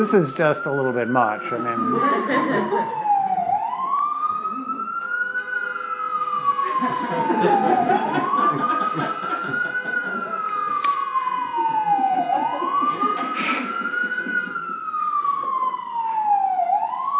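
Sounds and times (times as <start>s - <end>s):
speech: 0.0s - 3.0s, 6.8s - 9.1s
ambulance siren wailing on a New York street: 0.0s - 17.1s
steady traffic rumble: 0.0s - 17.1s
laughter: 1.7s - 3.4s, 6.4s - 15.2s.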